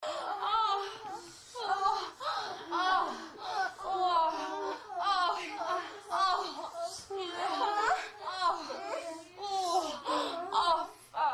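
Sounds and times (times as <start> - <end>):
people moaning during sex: 0.0 - 11.3.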